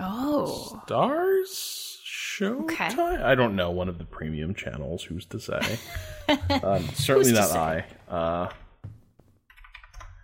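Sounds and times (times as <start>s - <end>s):
speech: 0.4s - 1.8s, 2.4s - 8.6s
laughter: 5.6s - 7.8s
typing on a computer keyboard: 9.5s - 10.2s.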